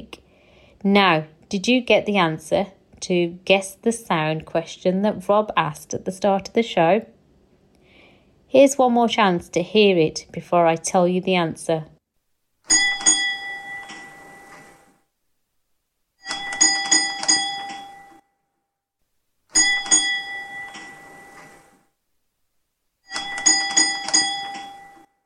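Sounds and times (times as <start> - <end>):
speech: 0.8 - 7.1, 8.5 - 11.9
bell on an electric tram ringing: 12.7 - 14.5, 16.2 - 18.2, 19.6 - 21.7, 23.1 - 25.1.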